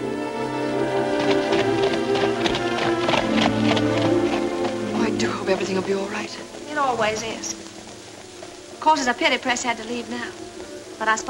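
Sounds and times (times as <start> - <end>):
horse hooves clip-clopping in a trotting rhythm: 0.0 - 11.2
speech: 5.6 - 7.6, 8.8 - 11.2.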